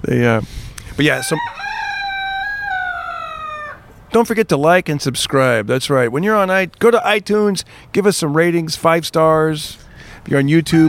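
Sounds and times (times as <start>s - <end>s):
speech: 0.0s - 1.6s, 4.1s - 10.8s
rooster crowing: 1.1s - 3.8s.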